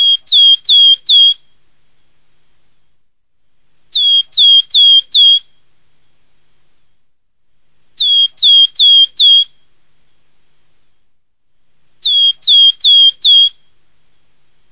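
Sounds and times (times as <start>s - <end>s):
Willow tit giving clear down-slurred whistled notes: 0.0s - 1.6s, 3.9s - 5.6s, 8.0s - 9.7s, 12.0s - 14.2s.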